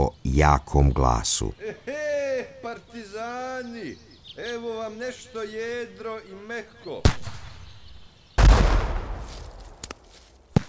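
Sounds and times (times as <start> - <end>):
speech: 0.0 - 1.9, 2.7 - 7.4
heavy artillery blast from howitzers firing into the hills: 7.1 - 9.8
sharp short cracks of fire: 7.1 - 10.0.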